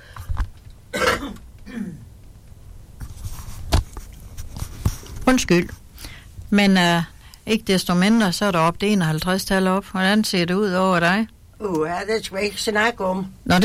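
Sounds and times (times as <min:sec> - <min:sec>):
person clearing throat: 0:00.9 - 0:02.1
person coughing: 0:00.9 - 0:02.1
speech: 0:05.3 - 0:05.8, 0:06.5 - 0:13.6.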